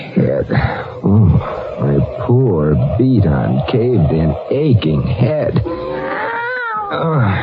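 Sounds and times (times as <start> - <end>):
speech: 0.2 - 6.0, 6.9 - 7.4
cat meowing: 5.7 - 7.4.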